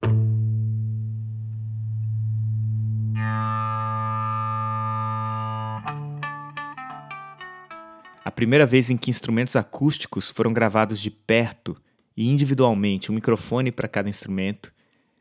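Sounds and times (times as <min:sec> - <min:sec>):
sustained electric guitar feedback tone: 0:00.0 - 0:08.2
speech: 0:08.4 - 0:14.8.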